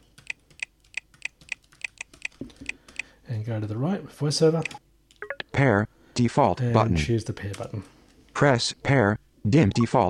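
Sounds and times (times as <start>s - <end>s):
password typed on a computer keyboard: 0.0s - 3.0s
speech: 3.3s - 4.8s, 5.6s - 10.0s.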